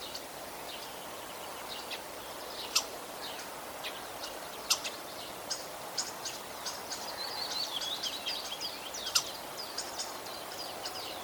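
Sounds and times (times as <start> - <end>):
constant low hiss: 0.0 - 11.2
common starling calls: 2.7 - 11.2.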